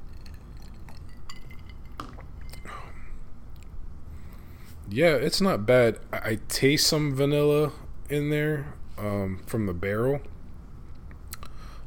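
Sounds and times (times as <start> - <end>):
low hum: 0.0 - 11.8
glass clinking: 0.1 - 2.7
speech: 4.9 - 10.3.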